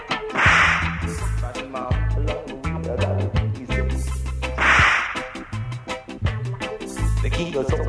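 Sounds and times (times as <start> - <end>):
driving beat with deep bass notes and steady percussion: 0.0 - 7.8
whip cracking: 0.3 - 1.3, 4.6 - 5.7
speech: 7.4 - 7.8.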